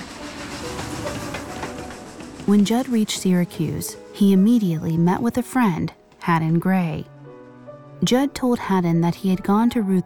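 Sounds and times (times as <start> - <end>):
train clattering along rails: 0.0 - 5.3
speech: 2.5 - 7.1, 8.0 - 10.0.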